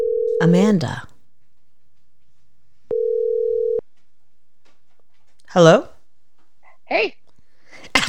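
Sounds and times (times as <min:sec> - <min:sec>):
electronic phone call ringing tone: 0:00.0 - 0:00.5, 0:02.9 - 0:03.8
speech: 0:00.4 - 0:01.1, 0:05.5 - 0:05.9, 0:06.9 - 0:07.2.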